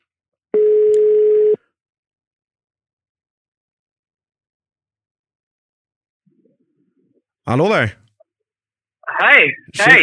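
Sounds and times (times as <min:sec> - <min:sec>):
telephone ringback tone of an outgoing call: 0:00.6 - 0:01.6
speech: 0:07.5 - 0:08.0, 0:09.2 - 0:10.0.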